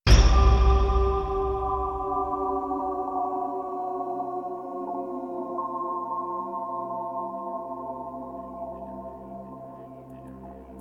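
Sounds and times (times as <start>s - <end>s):
downward pitched sound in B flat: 0.1s - 4.0s.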